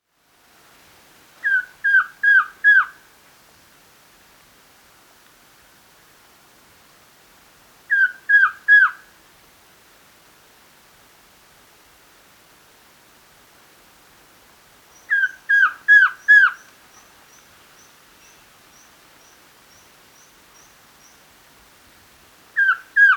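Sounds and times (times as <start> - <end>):
masked trogon Trogon personatus calling: 1.4 - 3.0, 15.1 - 16.7, 22.6 - 23.1.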